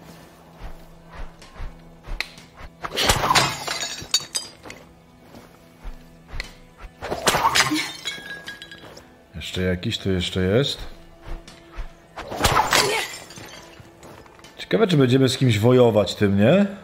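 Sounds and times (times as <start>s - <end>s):
objects shattering as they are shot in a video game: 2.9s - 4.9s, 7.1s - 9.1s, 12.2s - 14.5s
speech: 9.6s - 11.0s, 14.7s - 16.8s.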